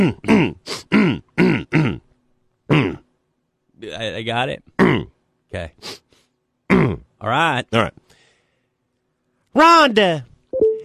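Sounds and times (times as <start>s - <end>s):
speech: 0.0s - 0.3s, 4.2s - 6.0s, 6.9s - 8.0s, 9.6s - 10.3s
person clearing throat loudly: 0.0s - 2.1s, 2.7s - 3.1s, 4.8s - 5.2s, 6.7s - 7.1s.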